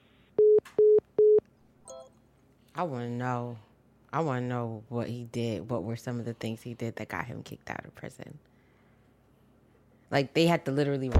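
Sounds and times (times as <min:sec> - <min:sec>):
telephone busy signal after a cut phone call: 0:00.4 - 0:02.0
speech: 0:02.8 - 0:08.5, 0:10.1 - 0:11.1.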